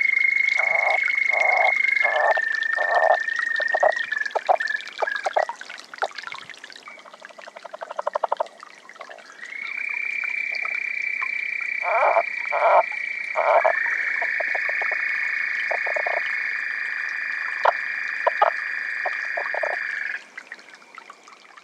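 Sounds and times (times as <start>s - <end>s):
lowland leopard frog calling in Arizona: 0.0s - 5.5s, 6.9s - 20.2s.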